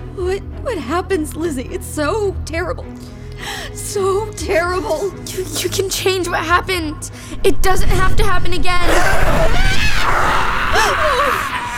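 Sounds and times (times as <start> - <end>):
speech: 0.4 - 11.6
wavering high-pitched scream: 8.9 - 11.7.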